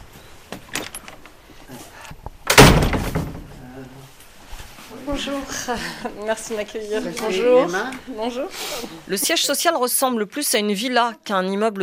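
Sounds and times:
door from Syria shutting with a heavy thud: 2.5s - 3.6s
speech: 5.1s - 11.8s.

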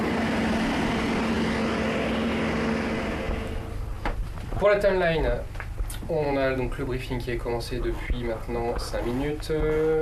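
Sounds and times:
drone aircraft propeller engine taxiing away: 0.0s - 4.5s
speech: 4.6s - 10.0s.

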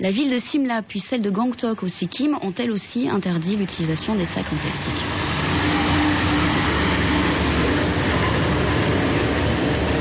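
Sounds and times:
speech: 0.0s - 5.3s
truck engine rumbling at the Okhla landfill: 2.0s - 9.9s.

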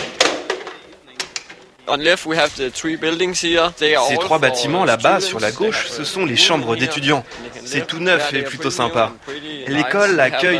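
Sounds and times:
table football game wooden clacks and rattles at an agricultural school: 0.0s - 1.8s
speech: 1.9s - 10.5s.

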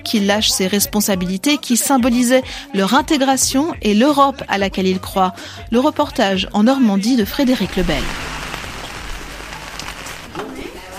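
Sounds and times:
speech: 0.0s - 8.3s
heavy rain falling in Perriers-en-Beauficel Normandy France: 7.4s - 10.9s.

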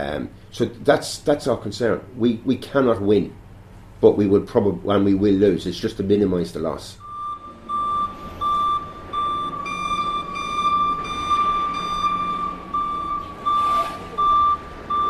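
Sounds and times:
constant low forklift engine rumble: 0.0s - 15.0s
faint machinery noise: 0.0s - 15.0s
speech: 0.1s - 3.4s, 4.0s - 7.0s
forklift truck reversing alarm beeping at a factory in County Monaghan Ireland: 7.0s - 15.0s.

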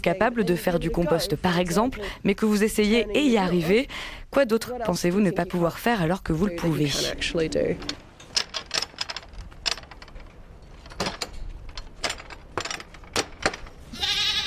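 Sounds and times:
speech: 0.0s - 8.0s
rustling knocks: 7.5s - 13.9s
goats bleating: 13.9s - 14.4s.

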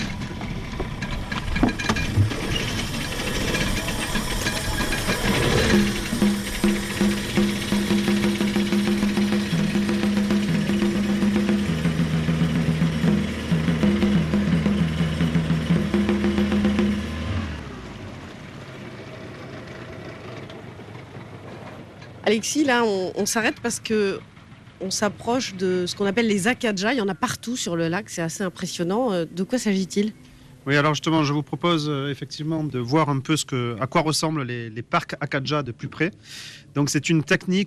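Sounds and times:
small motor on a rowing boat on a lake starting and running: 0.0s - 21.4s
speech: 22.3s - 37.6s.

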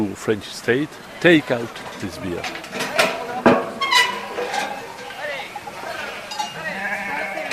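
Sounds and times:
speech: 0.0s - 2.7s
murmur of the herd moving: 0.0s - 7.5s
flock of sheep bleating: 6.5s - 7.5s.

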